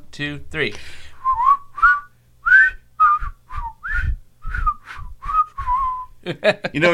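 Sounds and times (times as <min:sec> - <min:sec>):
speech: 0:00.2 - 0:01.1, 0:06.3 - 0:06.9
two people whistling a jaunty tune: 0:01.2 - 0:06.1.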